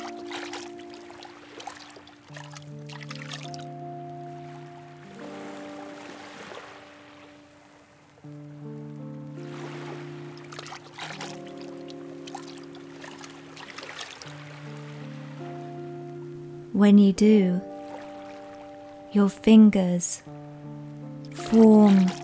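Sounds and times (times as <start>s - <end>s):
soft sustained musical tones humming: 0.0s - 22.2s
speech: 16.8s - 17.7s, 19.1s - 20.4s, 21.5s - 22.2s
hand splashing and swishing through water: 21.4s - 22.2s.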